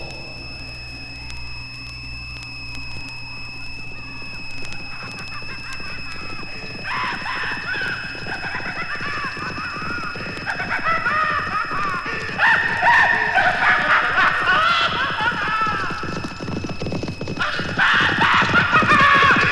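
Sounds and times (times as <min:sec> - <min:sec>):
sustained eerie electronic hum: 0:00.0 - 0:19.5
laughter: 0:03.8 - 0:16.4, 0:17.4 - 0:19.5
white stallion galloping across the countryside: 0:12.2 - 0:19.5.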